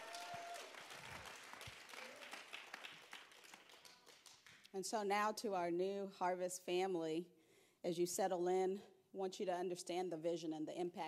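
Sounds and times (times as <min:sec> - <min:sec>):
people whooping in a church audience: 0:00.0 - 0:02.4
church audience applause: 0:00.0 - 0:04.6
speech: 0:04.7 - 0:11.0.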